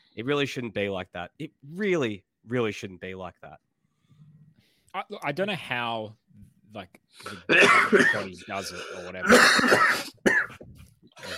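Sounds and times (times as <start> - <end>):
speech: 0.2 - 3.7, 4.9 - 10.5
person coughing in harsh raspy bursts: 7.2 - 10.6.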